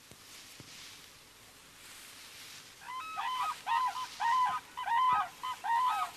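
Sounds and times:
steady background hiss: 0.0 - 6.1
red-crowned crane trumpeting calls: 2.8 - 6.1.

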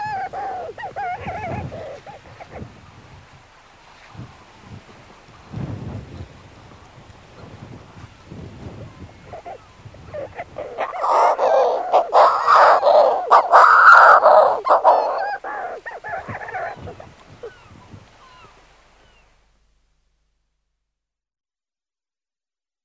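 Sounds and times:
Manx shearwater giving harsh raucous cackling calls: 0.0 - 2.7, 9.2 - 18.6.

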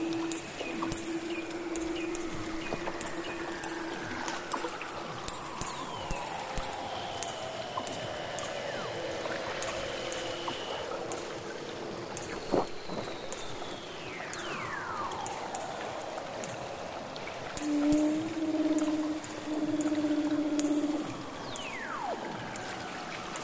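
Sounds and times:
overlapping tones: 0.0 - 8.8, 17.6 - 22.2
Weddell seal underwater whistles: 0.0 - 11.3, 12.1 - 23.4.

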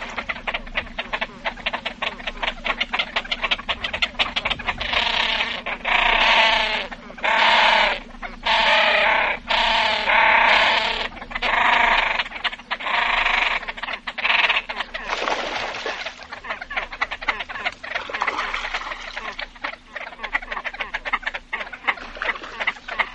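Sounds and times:
great crested grebe braying calls: 0.0 - 23.1.

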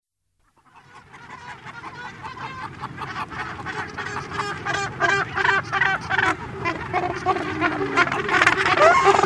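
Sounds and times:
Cape gannets calling with harsh rhythmic cackling: 0.6 - 9.2.

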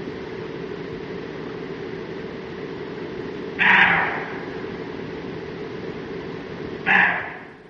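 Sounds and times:
low background hum: 0.0 - 7.6
roe deer barking: 3.6 - 4.7, 6.8 - 7.6.

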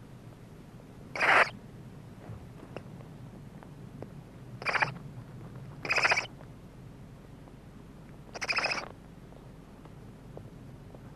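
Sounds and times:
soft background hum: 0.0 - 11.1
barn owl hissing screech: 1.2 - 1.6, 4.6 - 4.9, 5.8 - 6.3, 8.4 - 8.8.

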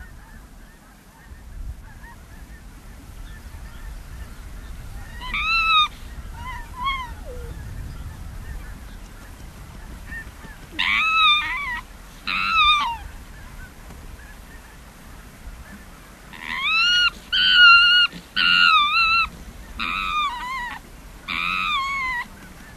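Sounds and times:
Arctic fox giving harsh harmonic yelps: 5.1 - 7.6, 10.7 - 13.1, 16.4 - 22.3.

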